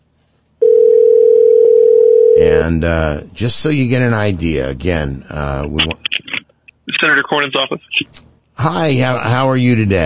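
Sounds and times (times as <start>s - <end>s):
steady telephone tone of a call being dialed: 0.6s - 2.4s
speech: 2.6s - 6.0s, 7.0s - 10.0s.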